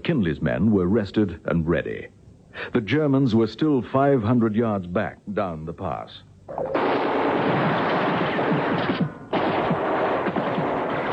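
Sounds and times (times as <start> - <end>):
speech: 0.0 - 7.0
heavy gunfire in a wartime battle at a mountain pass: 6.8 - 11.1.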